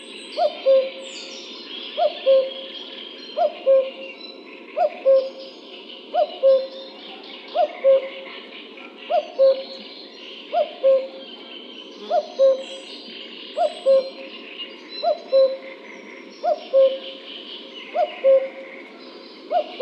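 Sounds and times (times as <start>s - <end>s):
common cuckoo two-note call: 0.4s - 1.0s, 2.0s - 2.7s, 3.4s - 4.1s, 4.8s - 5.4s, 6.1s - 6.8s, 7.5s - 8.2s, 9.1s - 9.8s, 10.5s - 11.2s, 12.1s - 12.8s, 13.6s - 14.3s, 15.0s - 15.6s, 16.4s - 17.2s, 17.9s - 18.6s, 19.5s - 19.8s.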